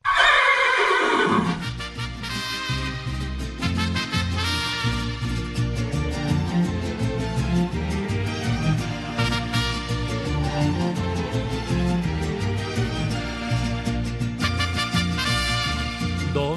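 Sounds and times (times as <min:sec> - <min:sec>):
horse whinnying: 0:00.0 - 0:01.8
band music: 0:01.6 - 0:16.5.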